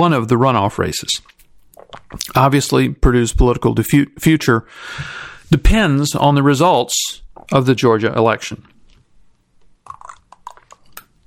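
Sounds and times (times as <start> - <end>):
speech: 0.0 - 1.4, 2.1 - 8.7
person sipping water: 1.2 - 2.4, 9.8 - 11.2
swallowing: 1.7 - 2.4, 9.8 - 11.2.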